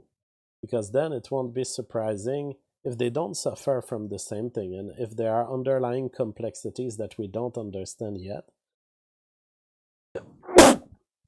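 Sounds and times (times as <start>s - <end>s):
speech: 0.6s - 8.6s
single sneeze: 10.2s - 10.8s.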